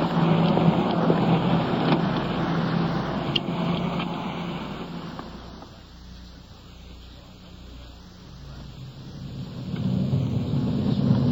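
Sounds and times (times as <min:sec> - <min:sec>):
police car engine rumble driving off: 0:00.0 - 0:11.2
road noise: 0:00.0 - 0:11.2.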